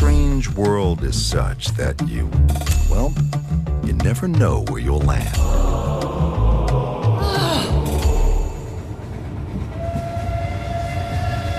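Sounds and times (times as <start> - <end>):
speech: 0.5 - 6.4
tonal whine: 5.4 - 10.9
train rumbling on rails: 5.4 - 11.5.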